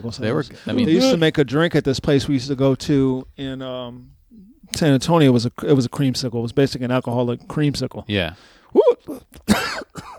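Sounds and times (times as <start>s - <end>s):
speech: 0.0s - 9.6s
harsh coughs: 9.5s - 10.1s.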